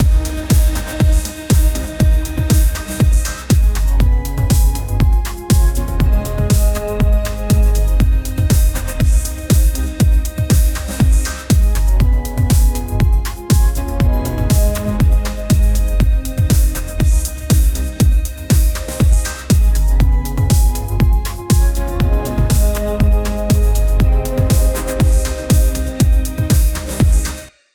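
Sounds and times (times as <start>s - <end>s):
cinematic epic beats: 0.0s - 27.5s.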